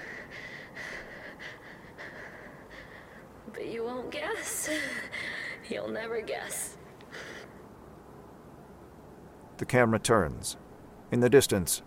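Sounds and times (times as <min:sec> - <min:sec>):
heavy breathing with rasping inhales and exhales: 0:00.0 - 0:03.4, 0:04.4 - 0:05.7, 0:07.1 - 0:07.6
speech: 0:03.6 - 0:06.8, 0:09.6 - 0:11.8.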